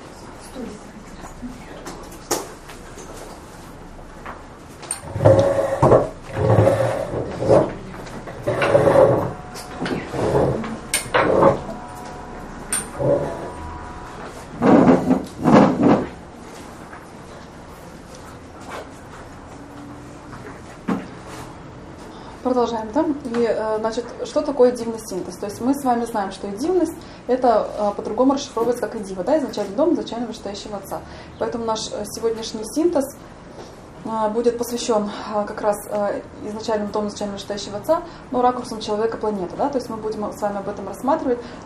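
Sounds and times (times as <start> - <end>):
chairs scraping and thudding as they are moved and set down: 4.8 - 17.1
speech: 22.6 - 33.1, 34.1 - 41.6.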